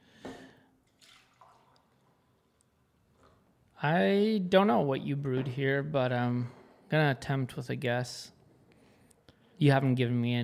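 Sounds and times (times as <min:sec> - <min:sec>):
coffee pouring into a cup: 0:00.8 - 0:02.4
coffee trickling and dripping: 0:00.8 - 0:03.4
speech: 0:03.8 - 0:08.4, 0:09.6 - 0:10.4.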